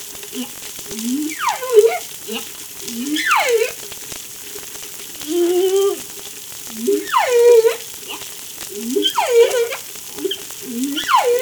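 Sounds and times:
faint crackling background: 0.0s - 11.4s
whale short low upswept grunts: 0.2s - 3.9s, 6.7s - 11.4s
whale harmonic tonal moans sweeping downward: 0.3s - 3.9s, 5.2s - 6.1s, 6.7s - 11.4s.

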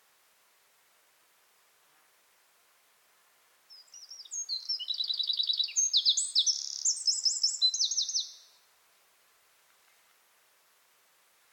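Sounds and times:
Eurasian wren Troglodytes troglodytes singing: 3.7s - 8.6s.

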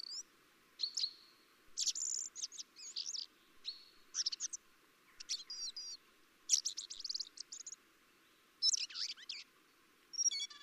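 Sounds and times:
common blackbird Turdus merula calling: 0.8s - 7.8s, 8.6s - 9.5s, 10.1s - 10.6s.

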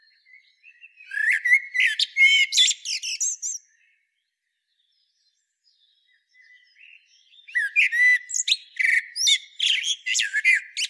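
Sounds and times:
common blackbird Turdus merula singing varied chirpy notes and whistles: 0.0s - 4.0s, 4.8s - 10.8s.

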